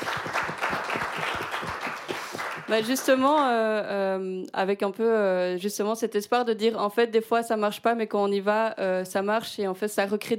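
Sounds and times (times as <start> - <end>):
crowd applauding: 0.0 - 3.4
speech: 2.7 - 10.3.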